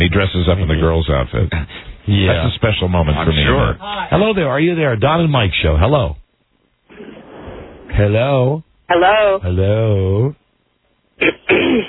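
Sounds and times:
speech: 0.2 - 6.2, 8.0 - 10.4, 11.2 - 11.8
caller clearing throat over a phone line: 11.2 - 11.8.

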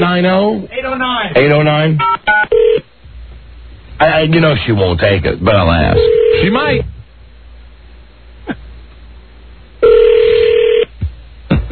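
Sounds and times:
speech: 0.0 - 2.2, 4.0 - 7.0
telephone dialing tone: 9.8 - 10.8.

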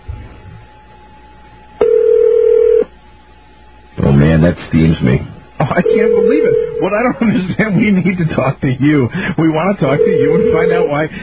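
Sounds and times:
electronic telephone ring tone: 1.8 - 2.9, 5.8 - 7.0, 9.9 - 11.0
speech: 4.4 - 11.2.

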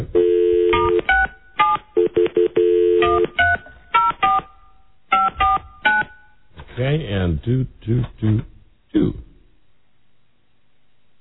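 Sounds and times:
telephone keypad tones as a phone number is dialed: 0.2 - 6.4
speech: 6.8 - 9.3.

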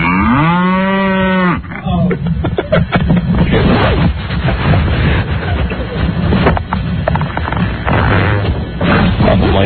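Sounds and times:
cow mooing: 0.0 - 1.8
dense noisy clatter and rustling: 2.1 - 9.6.

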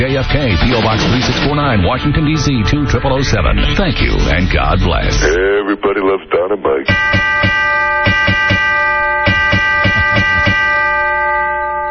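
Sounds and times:
speech: 0.0 - 8.5
chime bell ringing: 6.9 - 11.8.

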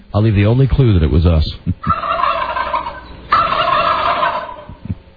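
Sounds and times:
speech: 0.1 - 1.9
turkeys gobbling: 1.8 - 4.9.

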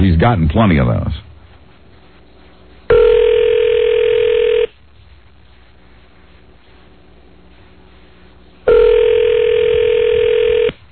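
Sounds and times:
speech: 0.0 - 1.2
faint hum: 0.0 - 10.9
ringback tones from an outgoing phone call: 2.9 - 4.7, 8.7 - 10.8.

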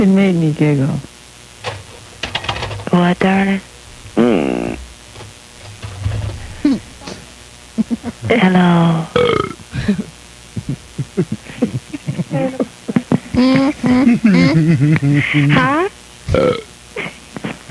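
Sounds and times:
speech: 0.0 - 1.1, 3.0 - 4.8, 8.3 - 10.1, 13.4 - 16.7
loud burps: 3.9 - 4.9, 9.2 - 9.6, 16.3 - 17.1
laughter: 7.8 - 8.4, 9.8 - 15.7.

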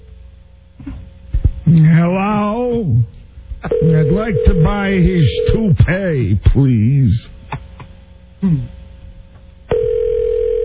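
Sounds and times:
speech: 1.9 - 3.1, 3.8 - 7.4, 8.4 - 8.8
telephone line tone ringing through a handset: 3.7 - 5.6, 9.7 - 10.6.

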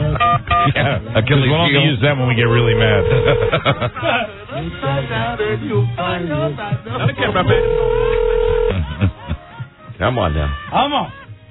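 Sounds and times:
speech: 0.8 - 8.2, 10.0 - 11.2
ringback tone from an outgoing phone call through a handset or speaker: 2.5 - 3.6, 7.5 - 8.8
laughter: 3.0 - 4.6, 6.6 - 11.4.

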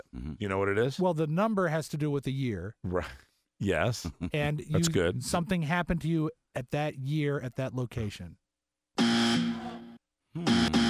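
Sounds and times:
speech: 0.1 - 8.4
game show buzzer in a quiz round: 9.0 - 10.8.

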